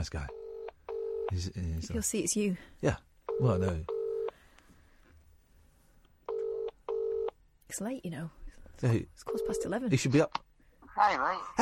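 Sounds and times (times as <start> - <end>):
speech: 0.0 - 0.4, 1.3 - 3.9, 7.7 - 10.4, 11.0 - 11.6
phone line ringing out on an outgoing call through a handset: 0.3 - 1.3, 3.3 - 4.3, 6.3 - 7.3, 9.3 - 9.7.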